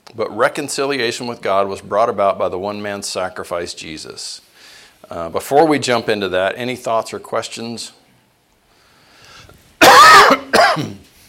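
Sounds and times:
speech: 0.1 - 8.0
loud coughing and throat clearing: 9.8 - 11.1.

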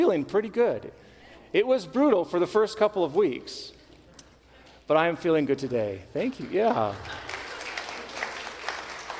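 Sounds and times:
speech: 0.0 - 3.8, 4.9 - 7.3
audience applauding: 5.7 - 9.1.

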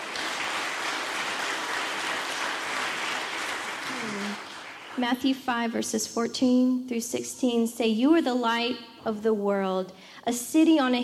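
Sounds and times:
audience clapping at a worship gathering: 0.0 - 5.1
speech: 5.0 - 11.0.

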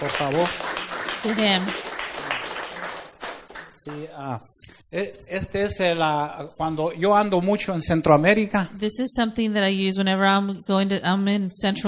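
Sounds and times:
speech: 0.0 - 1.9, 3.9 - 11.8
audience applause: 0.0 - 4.1.

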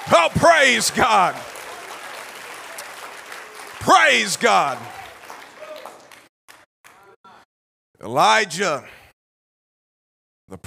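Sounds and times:
audience clapping hands: 0.0 - 7.2
speech: 0.1 - 1.6, 3.8 - 5.0, 8.0 - 9.0, 10.5 - 10.6.

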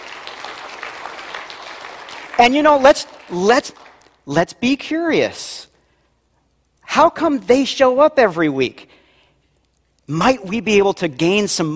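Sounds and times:
crowd clapping: 0.0 - 4.2
speech: 2.4 - 5.7, 6.9 - 8.9, 10.1 - 11.7.

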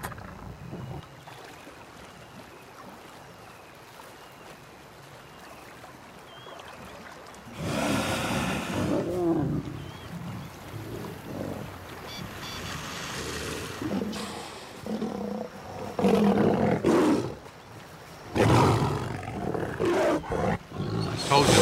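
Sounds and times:
pride of lions growling and roaring while feeding on a dead hippo: 7.6 - 11.9, 12.9 - 17.5, 18.3 - 21.6
steady outdoor riverside hiss: 12.3 - 15.0.

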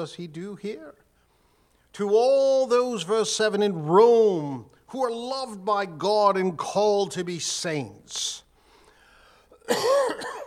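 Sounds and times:
speech: 0.0 - 1.0, 1.9 - 8.4, 9.7 - 10.4
raspy cough: 9.6 - 10.4.

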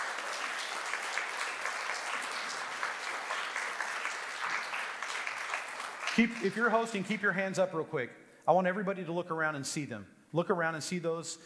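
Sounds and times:
crowd applause: 0.0 - 7.2
speech: 6.2 - 11.4.

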